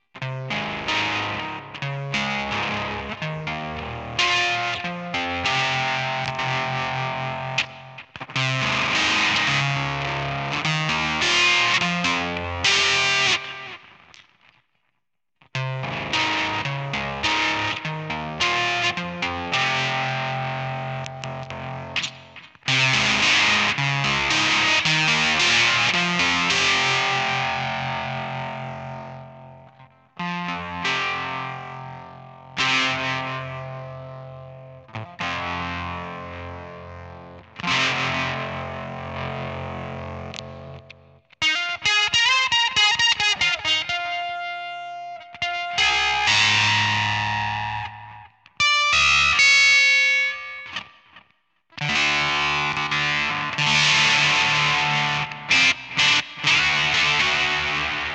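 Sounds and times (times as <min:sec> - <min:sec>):
seven-string electric guitar through octaver pedal and effects processor: 0:00.0 - 0:14.6, 0:15.5 - 0:58.1.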